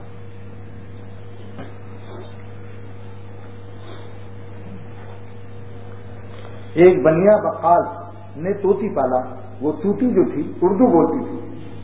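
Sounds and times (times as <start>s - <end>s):
electric fan running: 0.0s - 11.8s
speech: 6.8s - 11.5s.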